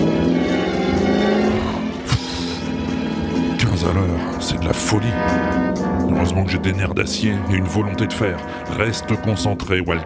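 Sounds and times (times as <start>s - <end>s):
car engine accelerating: 0.0s - 4.0s
speech: 4.6s - 10.0s.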